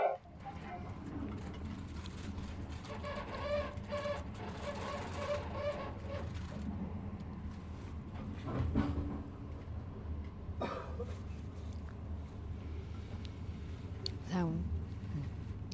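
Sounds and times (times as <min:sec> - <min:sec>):
rail clatters and squeaks: 0:00.0 - 0:06.6
train rolling along the rails: 0:00.0 - 0:15.7.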